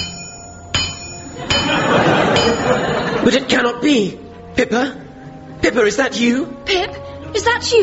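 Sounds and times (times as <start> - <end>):
hammer striking an anvil: 0.0 - 2.8
laughter: 1.3 - 4.0
speech: 3.2 - 5.0, 5.6 - 7.8.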